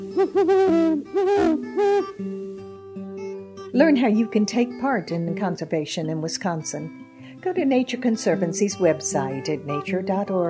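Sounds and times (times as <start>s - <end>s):
great horned owl hooting: 0.0s - 2.2s
speech: 0.2s - 2.6s, 3.8s - 10.4s.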